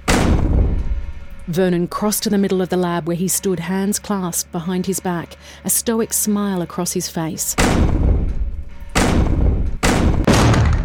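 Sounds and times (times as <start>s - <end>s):
heavy booming bangs on a laboratory door: 0.0s - 1.0s, 7.6s - 10.8s
low rumbling: 0.0s - 2.4s, 7.6s - 10.8s
speech: 1.5s - 8.0s.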